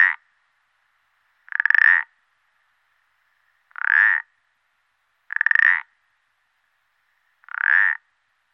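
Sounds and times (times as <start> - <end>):
common parsley frog giving creaky ratcheting croaks: 1.5 - 2.1, 3.7 - 4.2, 5.3 - 5.9, 7.4 - 8.0.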